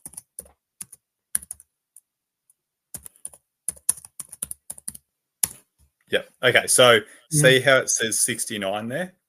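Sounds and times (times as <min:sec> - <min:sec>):
typing a search on a computer keyboard: 0:00.0 - 0:02.1, 0:02.9 - 0:05.6
speech: 0:06.1 - 0:09.2.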